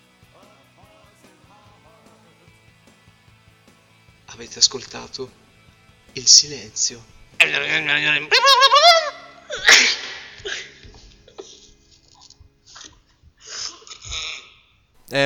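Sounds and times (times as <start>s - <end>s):
speech: 4.4s - 5.4s, 6.2s - 9.0s
voice imitating warbling animal cries: 7.4s - 10.8s, 12.8s - 14.6s
laughter: 7.4s - 13.0s
sharp sneeze-like burst: 8.8s - 10.7s
faint clicks, breaths and mouth sounds: 10.4s - 14.8s.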